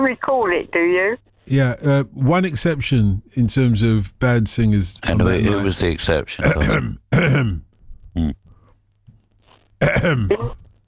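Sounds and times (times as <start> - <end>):
faint low hum: 0.0 - 10.8
speech: 0.1 - 8.4, 9.8 - 10.6
man clearing his throat: 6.4 - 8.4, 9.8 - 10.7.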